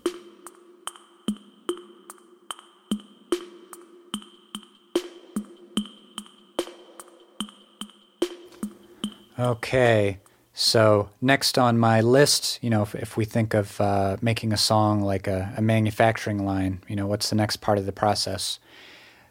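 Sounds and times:
simple drum machine groove built from old-sounding samples: 0:00.0 - 0:10.5
speech: 0:09.4 - 0:18.9.

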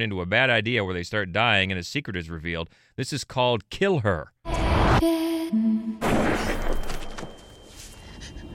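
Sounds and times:
speech: 0:00.0 - 0:06.8
gunshot echoing: 0:06.0 - 0:07.4.

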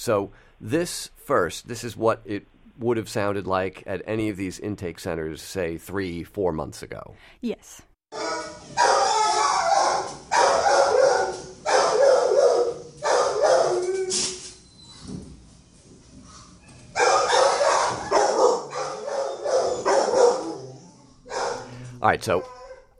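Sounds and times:
speech: 0:00.0 - 0:08.8, 0:22.1 - 0:22.9
many dogs barking and yipping at an animal intake center: 0:08.2 - 0:14.0, 0:17.0 - 0:22.9.

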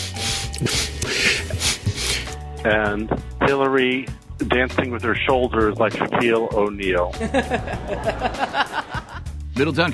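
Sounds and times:
candidate sniffing during an election: 0:00.0 - 0:02.4
laughter: 0:00.5 - 0:02.3, 0:07.1 - 0:09.3
speech: 0:00.6 - 0:00.9, 0:02.6 - 0:08.6, 0:09.6 - 0:09.9.

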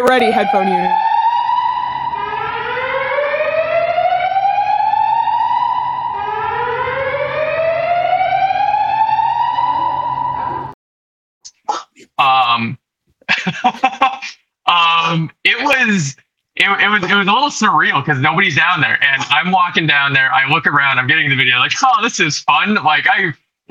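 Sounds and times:
speech: 0:00.0 - 0:01.1, 0:17.0 - 0:23.7
building fire alarm sounding in stairwell: 0:00.0 - 0:10.8
laughter: 0:12.2 - 0:15.8.

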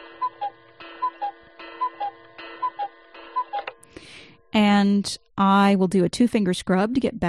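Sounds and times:
two-note cuckoo calls of an alarm tone: 0:00.0 - 0:03.8
steady ticking: 0:00.0 - 0:03.9
cuckoo clock alarm tone: 0:00.0 - 0:04.3
speech: 0:04.5 - 0:07.2.

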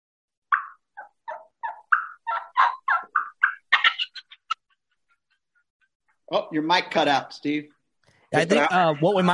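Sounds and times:
imitated turkey hen fly-down cackle: 0:00.5 - 0:05.4
speech: 0:06.3 - 0:09.3.

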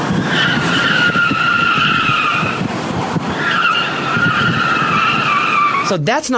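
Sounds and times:
bald car tires screeching while the vehicle turns: 0:00.0 - 0:06.1
car engine and road noise: 0:00.0 - 0:06.3.

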